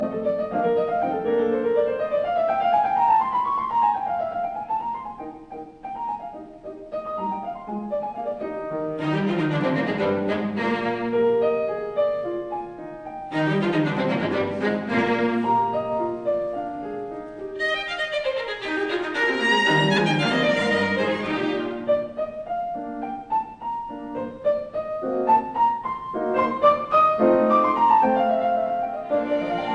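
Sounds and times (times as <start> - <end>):
piano quartet in E flat major playing allegretto: 0.0 - 29.7.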